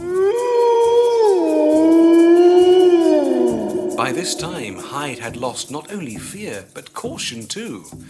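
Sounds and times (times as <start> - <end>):
wolf giving a long drawn howl: 0.0 - 5.7
speech: 4.1 - 8.0.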